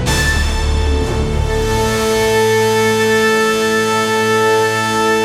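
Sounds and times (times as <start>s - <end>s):
banjo victory jingle: 0.1s - 5.1s.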